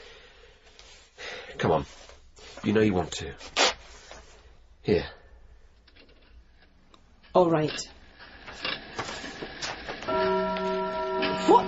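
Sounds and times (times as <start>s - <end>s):
speech: 1.6s - 3.6s, 4.8s - 5.2s, 7.4s - 8.0s
grandfather clock ticking: 10.1s - 11.6s.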